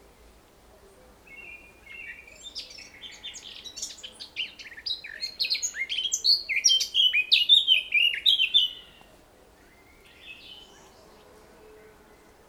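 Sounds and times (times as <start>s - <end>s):
Eurasian blackcap Sylvia atricapilla song: 1.3s - 11.0s.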